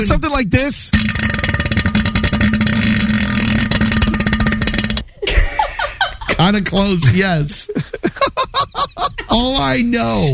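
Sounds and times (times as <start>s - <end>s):
speech: 0.0s - 1.4s, 6.4s - 8.7s, 9.3s - 10.3s
voice imitating a deep bassy fart in a toilet bowl: 0.9s - 5.3s
laughter: 5.2s - 9.5s.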